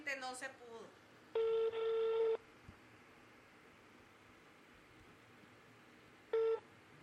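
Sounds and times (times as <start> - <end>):
soft hiss: 0.0 - 7.0
speech: 0.1 - 2.0
telephone call beeping tones: 1.4 - 2.4, 6.3 - 6.6.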